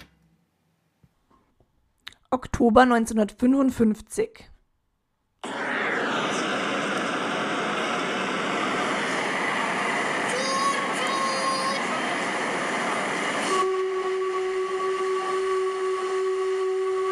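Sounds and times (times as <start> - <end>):
speech: 2.3 - 4.5
train arriving: 5.5 - 17.1
whistle-like tones: 13.4 - 17.1.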